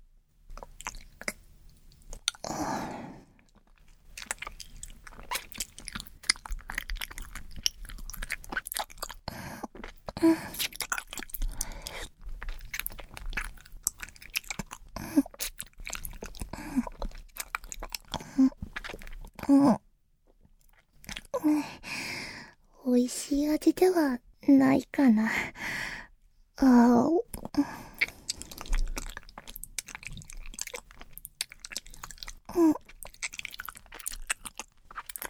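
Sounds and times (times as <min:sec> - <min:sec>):
chewing on something sticky mixed with saliva: 0:00.5 - 0:02.6, 0:03.2 - 0:19.4, 0:20.3 - 0:21.4, 0:27.3 - 0:35.2
speech: 0:23.0 - 0:25.6, 0:26.6 - 0:27.2.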